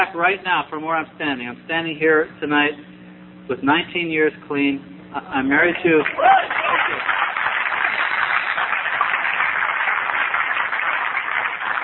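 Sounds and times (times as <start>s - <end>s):
speech: 0.0s - 2.9s, 3.5s - 7.1s
audience applause: 6.0s - 11.8s.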